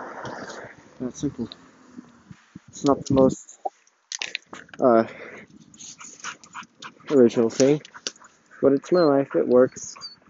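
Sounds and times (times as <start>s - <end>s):
street noise: 0.0s - 10.2s
speech: 1.0s - 1.6s, 2.8s - 3.6s, 4.8s - 5.2s, 7.1s - 7.9s, 8.6s - 10.0s
dog whining at a crosswalk: 8.8s - 10.2s.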